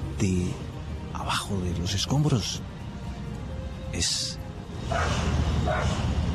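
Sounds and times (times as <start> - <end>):
speech: 0.2 - 2.7, 3.9 - 6.2
dog barking while searching rubble of a collapsed five-storey building: 4.9 - 6.1.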